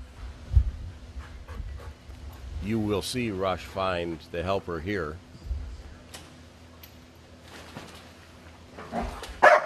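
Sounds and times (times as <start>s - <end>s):
low outdoor noise: 0.0s - 9.6s
speech: 2.6s - 5.3s
dog barking: 9.0s - 9.6s.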